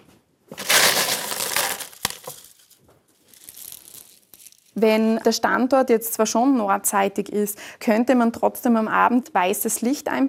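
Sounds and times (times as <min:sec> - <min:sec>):
small expanded clay pellets pouring into a glass jar around arranged plants: 0:00.6 - 0:04.8
speech: 0:04.8 - 0:10.2.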